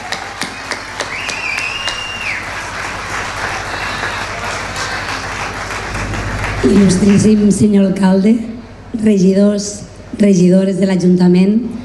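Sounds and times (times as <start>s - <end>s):
sizable crowd applauding a speaker: 0.0s - 8.0s
whistle above applause: 0.5s - 2.4s
speech: 6.6s - 11.8s.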